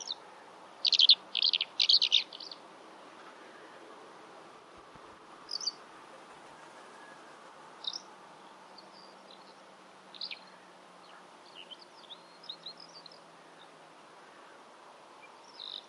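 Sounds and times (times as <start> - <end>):
bird high scratchy chirps: 0.0 - 0.2, 0.8 - 2.6, 5.5 - 5.8, 6.7 - 8.1, 8.7 - 13.7, 15.2 - 15.8
faint background hiss: 0.0 - 15.8.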